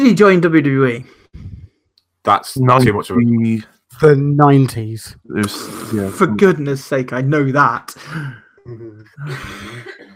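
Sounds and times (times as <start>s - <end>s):
speech: 0.0s - 1.2s, 2.2s - 10.1s
person coughing harshly: 9.2s - 10.1s.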